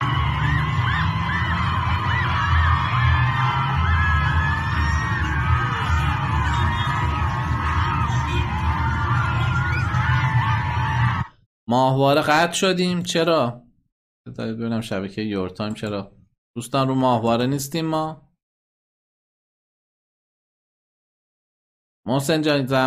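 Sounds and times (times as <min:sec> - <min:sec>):
street noise rumbling: 0:00.0 - 0:11.2
crowd of schoolchildren chanting slogans outdoors in the street: 0:00.0 - 0:11.3
speech: 0:11.7 - 0:13.6, 0:14.3 - 0:18.2, 0:22.1 - 0:22.8.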